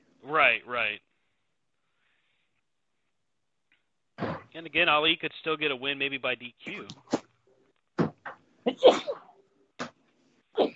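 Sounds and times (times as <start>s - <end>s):
speech: 0.2s - 1.1s, 4.5s - 7.2s
sneeze: 8.7s - 9.4s.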